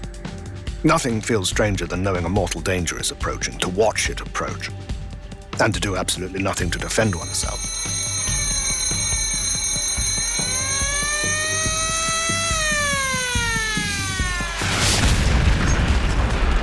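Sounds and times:
speech: 0:00.8 - 0:05.0, 0:05.6 - 0:07.9
alarm-like wail as a torpedo strikes a ship: 0:06.8 - 0:15.2
loud broad explosion of a torpedo striking a ship: 0:14.6 - 0:16.6.

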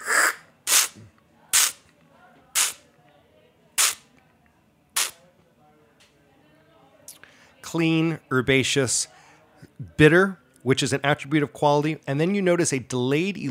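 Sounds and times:
slurping spray bursts while tasting olive oil: 0:00.0 - 0:01.8, 0:02.6 - 0:02.8, 0:03.8 - 0:04.0, 0:05.0 - 0:05.2
speech: 0:07.7 - 0:09.2, 0:10.0 - 0:13.4.

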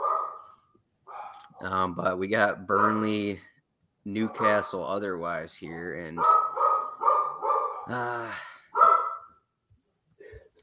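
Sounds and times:
dog barking: 0:00.0 - 0:01.7, 0:04.2 - 0:04.8, 0:06.2 - 0:07.9, 0:08.7 - 0:09.4
speech: 0:01.6 - 0:06.4, 0:07.9 - 0:08.5.

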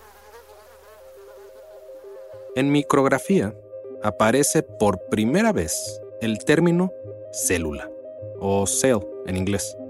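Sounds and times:
mosquito buzzing with a thin whine: 0:00.0 - 0:02.6
speech: 0:02.6 - 0:09.8.

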